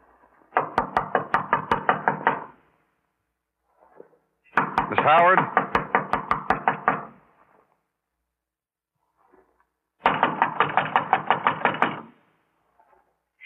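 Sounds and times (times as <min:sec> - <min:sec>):
police knocking on a door: 0:00.6 - 0:02.5, 0:04.6 - 0:07.1, 0:10.0 - 0:12.1
speech: 0:05.1 - 0:05.6.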